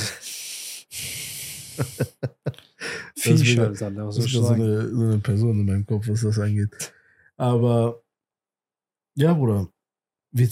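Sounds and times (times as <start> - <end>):
breathing through the nose: 0.0 - 1.9, 2.8 - 3.2
laughter: 1.6 - 3.6
speech: 1.8 - 2.4, 3.2 - 8.0, 9.2 - 10.4.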